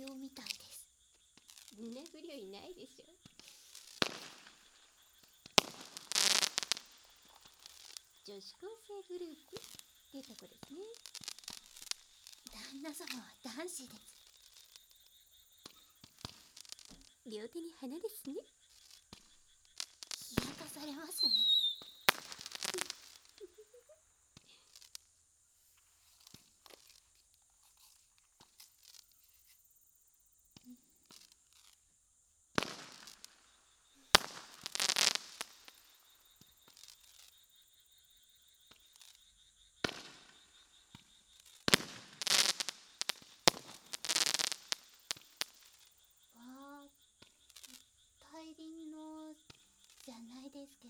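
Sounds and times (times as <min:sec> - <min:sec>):
fireworks crackling and hissing: 0:00.0 - 0:25.1, 0:25.8 - 0:29.3, 0:30.6 - 0:31.8, 0:32.5 - 0:37.4, 0:38.7 - 0:39.2, 0:39.8 - 0:48.0
speech: 0:08.3 - 0:11.2, 0:12.5 - 0:14.2, 0:17.3 - 0:18.6, 0:20.8 - 0:21.6.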